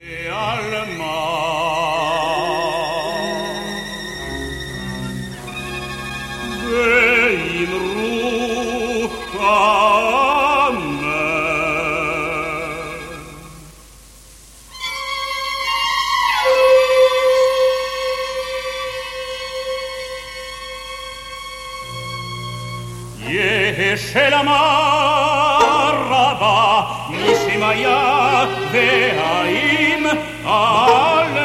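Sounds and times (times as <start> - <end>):
baritone singing: 0.0 - 3.8, 6.4 - 13.8, 23.1 - 31.4
string orchestra: 0.0 - 31.4
solo violin: 0.3 - 13.9, 14.6 - 31.4.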